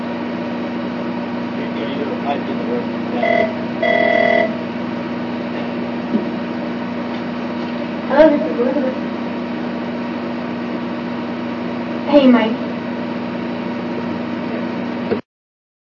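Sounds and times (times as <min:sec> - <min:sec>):
steady low mechanical hum: 0:00.0 - 0:15.2
electronic phone ringing: 0:03.2 - 0:04.6.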